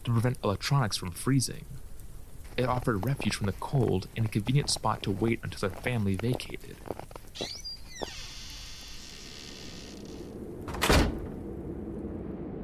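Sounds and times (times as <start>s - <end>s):
speech: 0.1s - 1.8s, 2.6s - 8.1s
wooden door swinging open with squeaky hinge creak: 7.4s - 11.3s
wooden door shutting with a solid thud: 10.6s - 11.4s.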